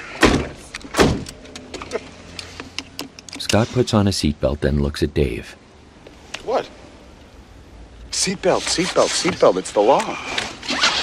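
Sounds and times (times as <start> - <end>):
car door opening and slamming shut: 0.2 - 2.1
speech: 3.5 - 5.6, 8.2 - 10.4.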